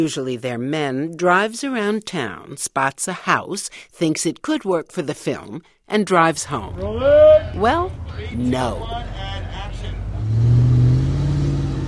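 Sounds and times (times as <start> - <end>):
speech: 0.0 - 9.2
car engine revving during a car chase: 6.6 - 11.8.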